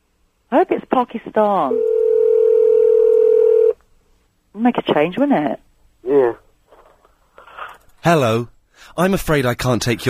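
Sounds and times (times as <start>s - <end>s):
speech: 0.5s - 2.0s, 4.6s - 6.4s, 8.0s - 10.0s
steady telephone dialing tone: 1.7s - 3.8s.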